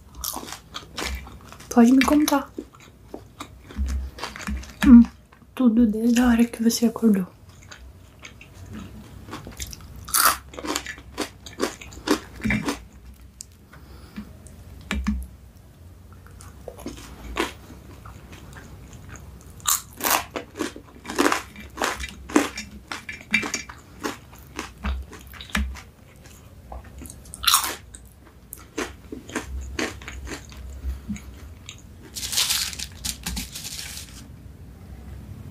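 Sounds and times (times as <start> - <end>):
crunchy biting and chewing of a hamburger and fries: 0.1 - 1.7, 2.6 - 4.8, 7.5 - 13.6, 16.3 - 34.2
speech: 1.8 - 2.7, 4.9 - 7.4.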